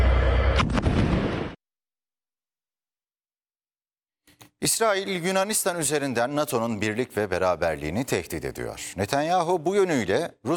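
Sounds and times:
Israeli warplane airstrike bunker-buster missile explosions on Kfar Rumman in Lebanon: 0:00.0 - 0:01.6
speech: 0:04.6 - 0:10.5.

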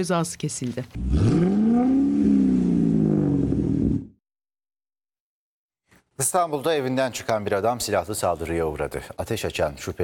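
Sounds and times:
speech: 0:00.0 - 0:02.0, 0:06.2 - 0:10.0
car with modified oversized exhaust revving loudly: 0:01.0 - 0:04.1.

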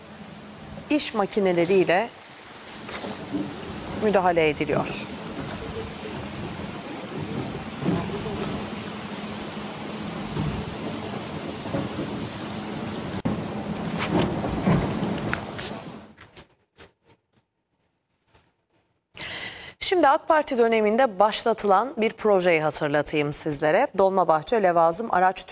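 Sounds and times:
heavy rain pouring in Sakarya or Bursa Turkey: 0:00.0 - 0:16.2
speech: 0:00.9 - 0:02.2, 0:03.3 - 0:05.2, 0:20.1 - 0:25.5.

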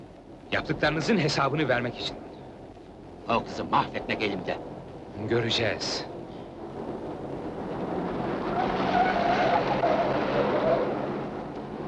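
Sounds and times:
car driven recklessly at high speed, engine-and-road rumble: 0:00.0 - 0:11.8
speech: 0:00.5 - 0:02.2, 0:03.3 - 0:06.1
thin tire-squeal whine: 0:07.7 - 0:11.8.

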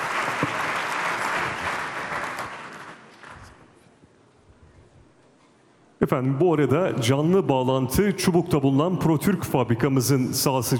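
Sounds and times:
audience applause greeting guests invited onto a stage at an official ceremony: 0:00.0 - 0:03.6
speech: 0:06.0 - 0:10.7.

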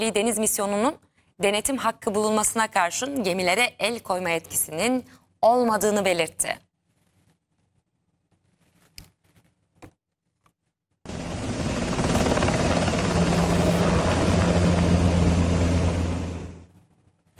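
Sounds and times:
speech: 0:00.0 - 0:06.7
firefighting helicopter rotor and engine roar during wildfires near Athens in Greece: 0:11.1 - 0:16.7.

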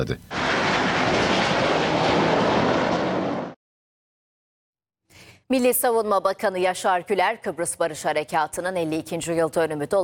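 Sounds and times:
speech: 0:00.0 - 0:00.4, 0:05.5 - 0:10.0
F-16 fighter jet roaring in an aerobatic display over Kyrenia in Northern Cyprus: 0:00.3 - 0:03.6.

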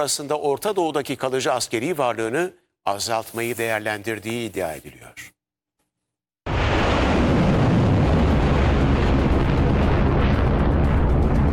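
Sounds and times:
speech: 0:00.0 - 0:05.4
crackling bursts: 0:06.5 - 0:11.5
rumbling explosion roar: 0:06.5 - 0:11.5.

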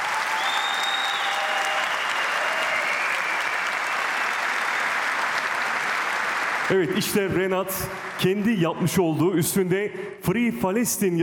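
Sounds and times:
crowd applause at a ceremony: 0:00.0 - 0:08.4
speech: 0:06.7 - 0:11.2.

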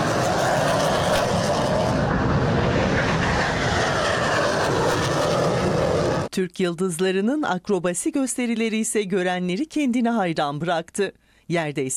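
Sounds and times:
helicopter, propeller plane and jet engines roaring at an air show: 0:00.0 - 0:06.3
speech: 0:06.4 - 0:11.9.

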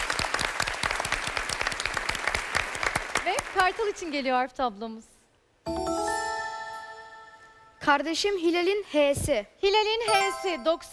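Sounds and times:
audience applause for a Nobel Chemistry Prize winner: 0:00.0 - 0:04.0
speech: 0:03.6 - 0:05.1, 0:07.9 - 0:10.9.

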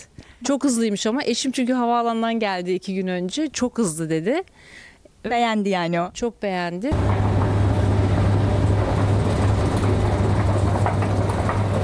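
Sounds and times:
speech: 0:00.0 - 0:07.2
faint clicking of metro train wheels on track: 0:06.9 - 0:11.8
fully automatic driverless metro train rumbling at deep underground station: 0:06.9 - 0:11.8.

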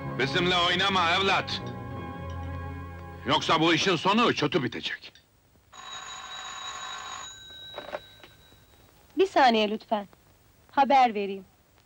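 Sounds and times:
speech: 0:00.2 - 0:01.7, 0:03.2 - 0:05.2, 0:09.2 - 0:10.2, 0:10.8 - 0:11.5
office telephone ringing for an incoming call: 0:05.7 - 0:09.1.

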